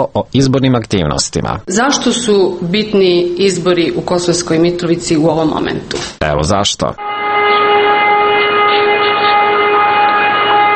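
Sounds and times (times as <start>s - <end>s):
speech: 0.0s - 7.3s
civil defense siren wailing over a small town: 7.0s - 10.7s.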